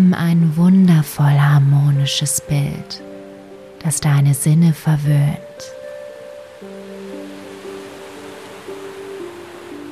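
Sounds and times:
speech: 0.1 - 3.1, 3.8 - 5.8
soft wash of ocean surf: 5.4 - 9.9.

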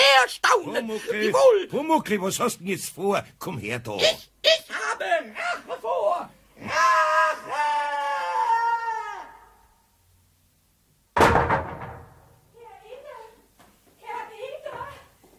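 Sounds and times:
speech: 0.3 - 7.7
high drawn-out vocal cry: 4.0 - 5.9, 6.6 - 9.7
drawers thrown to the floor crashing and clattering: 11.2 - 12.4.

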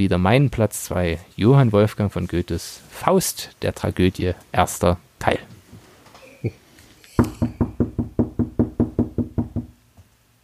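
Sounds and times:
speech: 0.0 - 5.4
rapid loud knocks: 7.2 - 9.8.

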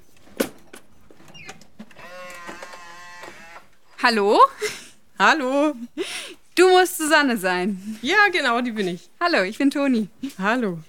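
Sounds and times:
automatic front door motor whirring: 1.3 - 3.8
speech: 4.0 - 10.8.

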